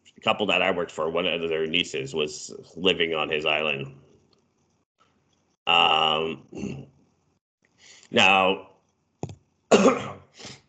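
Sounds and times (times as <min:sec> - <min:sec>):
speech: 0:00.2 - 0:04.0, 0:05.6 - 0:06.9, 0:07.8 - 0:08.7, 0:09.7 - 0:10.6
person coughing harshly: 0:09.7 - 0:10.6.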